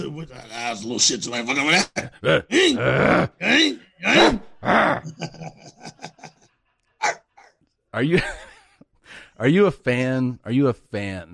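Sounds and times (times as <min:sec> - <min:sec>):
speech: 0:00.2 - 0:05.6, 0:08.0 - 0:08.4, 0:09.4 - 0:11.3
laughter: 0:01.4 - 0:06.6, 0:08.0 - 0:08.8
person imitating dog barking: 0:02.2 - 0:05.2, 0:07.0 - 0:07.5.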